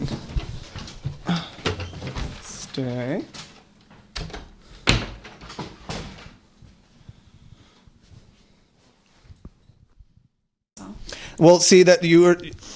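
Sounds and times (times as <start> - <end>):
shuffling footsteps: 0.0 - 10.4
speech: 2.8 - 3.4, 11.4 - 12.7
door banging as it swings or shuts: 4.0 - 6.4.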